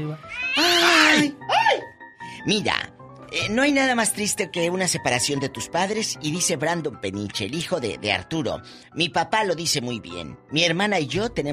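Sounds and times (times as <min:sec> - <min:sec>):
speech: 0:00.0 - 0:01.6, 0:02.4 - 0:11.5
kitten meowing: 0:00.2 - 0:01.4.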